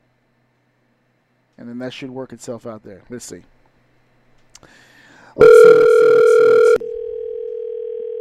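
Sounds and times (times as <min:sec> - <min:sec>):
speech: 0:01.6 - 0:03.6
outgoing phone call ringing tone through a phone speaker: 0:05.4 - 0:08.1.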